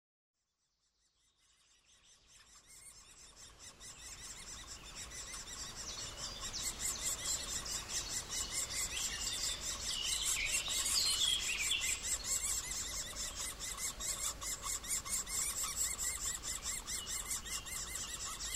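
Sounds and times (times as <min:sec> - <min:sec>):
middle spotted woodpecker calling with high squeaky notes: 0:02.1 - 0:18.5.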